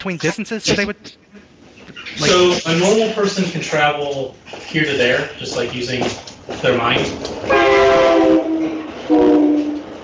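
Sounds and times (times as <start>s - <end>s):
speech: 0.0s - 1.3s, 2.2s - 8.5s
train horn blasts: 7.4s - 10.0s.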